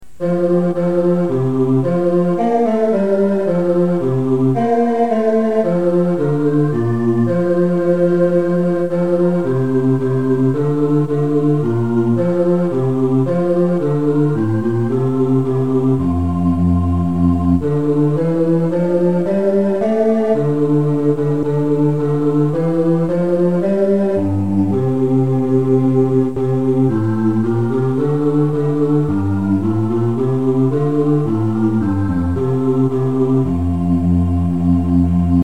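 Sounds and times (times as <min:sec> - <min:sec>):
bass playing a Christmas carol: 0:00.1 - 0:35.4.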